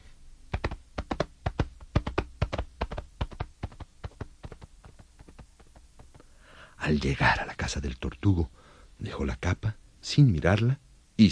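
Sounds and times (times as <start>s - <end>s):
horse hooves clip-clopping at a trot: 0.5s - 6.2s
speech: 6.8s - 11.3s.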